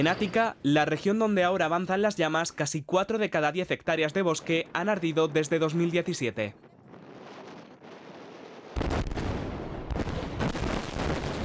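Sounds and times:
speech: 0:00.0 - 0:06.7
deep controlled blast in the bed of the Danube River in Romania: 0:06.6 - 0:11.4.

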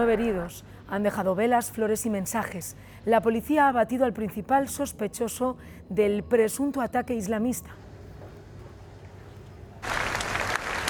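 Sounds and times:
speech: 0:00.0 - 0:07.8
crowd of thousands applauding at a vigil near the Brandenburg Gate in Berlin: 0:09.8 - 0:10.8.

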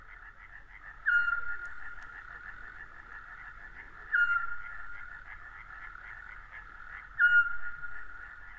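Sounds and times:
chorus of frogs trilling in humid forest: 0:00.0 - 0:08.5
scops owl whistling in humid forest: 0:01.1 - 0:01.6, 0:04.1 - 0:04.8, 0:07.2 - 0:07.8.

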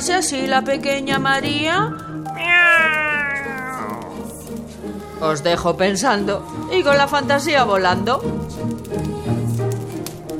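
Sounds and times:
speech: 0:00.0 - 0:02.9, 0:05.2 - 0:09.2
kitten meowing: 0:02.3 - 0:04.4.

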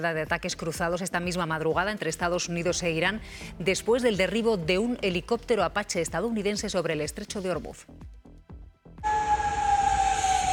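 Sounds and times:
speech: 0:00.0 - 0:08.0
air raid warning siren wailing in the Middle East: 0:09.0 - 0:10.5.

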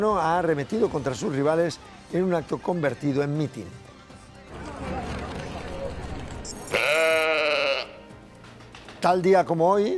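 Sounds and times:
speech: 0:00.0 - 0:03.8, 0:09.0 - 0:09.9
sheep bleating: 0:06.5 - 0:08.1.

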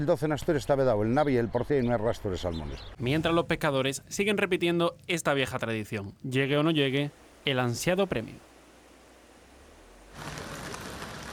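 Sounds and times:
speech: 0:00.0 - 0:08.5
steady rain pattering: 0:03.0 - 0:11.3.

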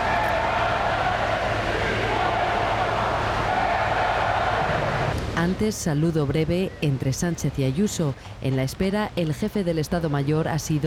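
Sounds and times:
large crowd booing and shouting insults: 0:00.0 - 0:05.2
speech: 0:05.4 - 0:10.8.

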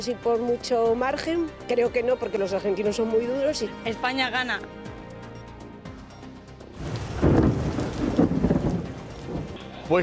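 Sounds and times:
speech: 0:00.0 - 0:04.9
deep rolls of thunder rumbling: 0:06.8 - 0:09.6
steady rain pouring during an electrical storm: 0:06.8 - 0:10.0.

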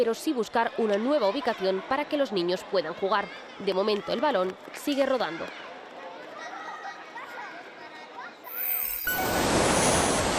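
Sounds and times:
speech: 0:00.0 - 0:05.7
tinkling chime: 0:08.5 - 0:10.2.

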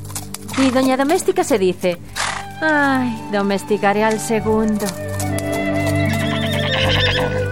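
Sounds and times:
speech: 0:00.6 - 0:05.2
horse neighing: 0:05.4 - 0:07.4.

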